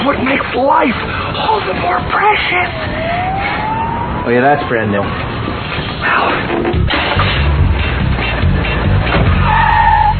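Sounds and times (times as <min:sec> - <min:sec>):
car engine roaring: 0:00.0 - 0:10.1
speech: 0:00.1 - 0:03.6, 0:04.2 - 0:07.4
car tires skidding and squealing across pavement: 0:02.2 - 0:06.7, 0:08.2 - 0:10.1.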